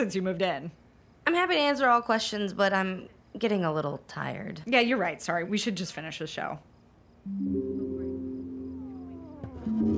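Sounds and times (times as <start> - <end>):
speech: 0.0 - 7.9
cat meowing: 8.6 - 9.9.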